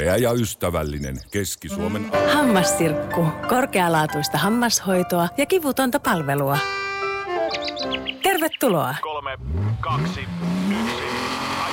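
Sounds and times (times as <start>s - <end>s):
speech: 0.0s - 6.8s, 7.9s - 11.2s
rally car engine revving as the car accelerates: 9.2s - 11.7s.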